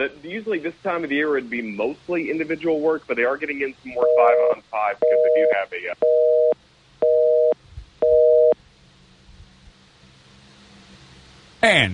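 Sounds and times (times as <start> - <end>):
speech: 0.0 - 6.5, 11.6 - 11.9
telephone busy tone from a dropped call: 4.0 - 8.6.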